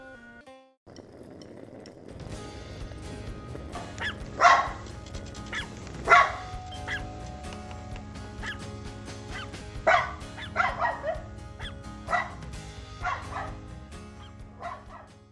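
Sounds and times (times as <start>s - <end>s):
dogs barking loudly: 3.8s - 7.2s, 8.4s - 8.7s, 9.3s - 13.7s, 14.6s - 15.1s.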